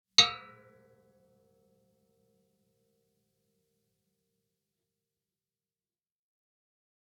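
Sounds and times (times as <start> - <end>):
mallet hits on zither: 0.2 - 0.8.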